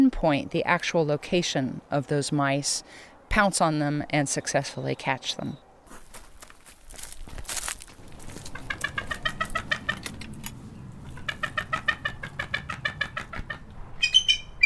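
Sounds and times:
speech: 0:00.1 - 0:05.6
rustling commotion: 0:05.9 - 0:10.2
bald eagle high thin chattering calls: 0:08.2 - 0:10.2, 0:11.0 - 0:14.6.

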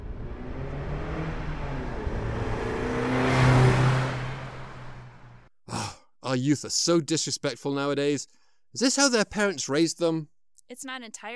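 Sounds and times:
car engine accelerating: 0:00.0 - 0:05.5
speech: 0:06.3 - 0:11.3.

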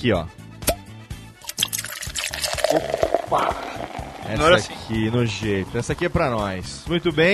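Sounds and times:
speech: 0:00.0 - 0:00.4, 0:02.7 - 0:07.3
Guinness beer pouring into a glass: 0:01.4 - 0:06.8
fizzy bubbling of beer: 0:01.4 - 0:07.0.

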